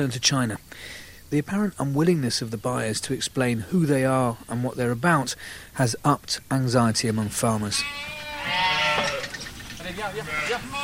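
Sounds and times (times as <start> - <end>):
speech: 0.0 - 9.1, 9.9 - 10.8
flock of black-faced Suffolk sheep bleating during feeding: 7.6 - 10.8.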